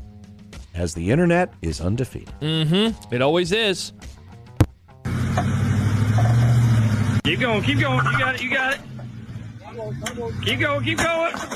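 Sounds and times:
speech: 0.8s - 4.2s, 7.3s - 8.9s, 9.8s - 11.5s
steady truck engine rumble: 5.0s - 11.5s
reversing truck dropping onto the ground: 10.9s - 11.5s.

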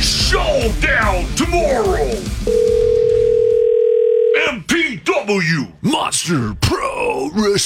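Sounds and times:
speech: 0.3s - 2.7s, 5.3s - 7.6s
telephone ringback tone on an outgoing call: 2.5s - 4.4s.

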